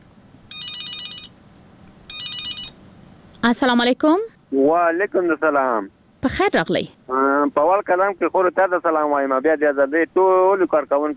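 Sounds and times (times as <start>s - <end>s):
electronic telephone trilling rings: 0.5s - 1.4s, 2.1s - 2.8s
speech: 3.4s - 11.1s.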